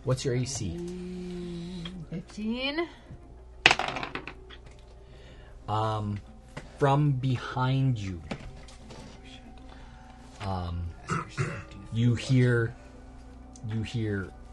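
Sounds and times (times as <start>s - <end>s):
speech: 0.0s - 1.1s, 2.1s - 3.2s, 5.7s - 8.3s, 10.4s - 12.8s, 13.6s - 14.4s
dice rolled for a perception check on a table: 3.6s - 4.4s
person imitating a wolf's growl: 11.0s - 11.8s.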